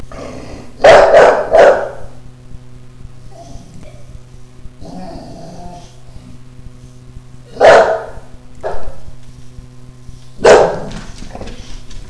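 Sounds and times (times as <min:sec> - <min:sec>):
steady low hum: 0:00.0 - 0:12.0
dog barking: 0:00.8 - 0:02.1, 0:07.5 - 0:09.0, 0:10.4 - 0:11.0.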